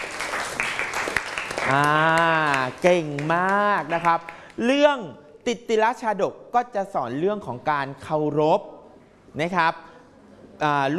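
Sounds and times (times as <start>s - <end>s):
classmates clapping in a classroom: 0.0s - 4.7s
speech: 1.7s - 9.9s, 10.6s - 10.9s.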